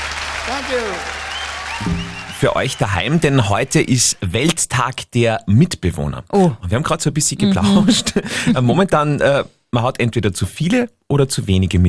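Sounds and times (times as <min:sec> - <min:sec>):
crowd applauding: 0:00.0 - 0:04.2
speech: 0:00.5 - 0:01.2, 0:01.8 - 0:11.8
laughter: 0:07.5 - 0:08.6.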